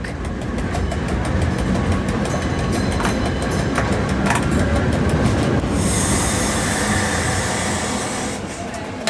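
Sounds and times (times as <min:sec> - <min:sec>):
rhythmic railcar wheel clatter: 0:00.0 - 0:05.9
1911 electric railcar rumbling along the Bernina line tracks: 0:00.0 - 0:09.0
bright metallic hiss and squeal from the rails: 0:05.7 - 0:08.8.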